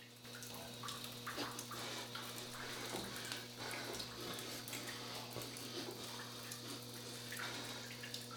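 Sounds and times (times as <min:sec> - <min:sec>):
faint clicks and splashes: 0:00.0 - 0:08.3
water running from a sink in a women's restroom: 0:00.0 - 0:08.3.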